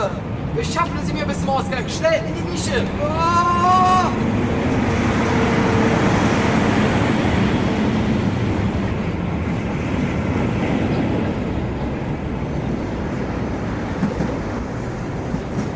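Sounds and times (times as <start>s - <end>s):
speech: 0.0s - 4.6s
rail wagons rushing past at speed: 0.0s - 15.7s.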